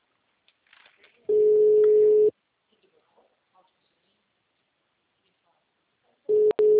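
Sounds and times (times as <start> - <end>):
telephone ringback tone of a call being placed: 1.3 - 2.3, 6.3 - 6.7.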